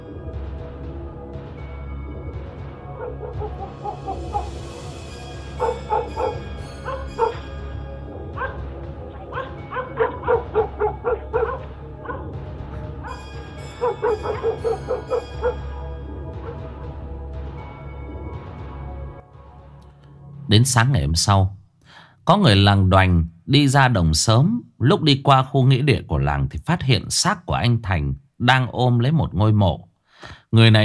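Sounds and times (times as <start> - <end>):
dogs barking: 2.8 - 4.7, 5.5 - 17.0
dogs whimpering yips: 3.0 - 4.6, 5.6 - 7.5, 8.4 - 8.6, 9.2 - 15.7
speech: 20.5 - 21.6, 22.3 - 30.8.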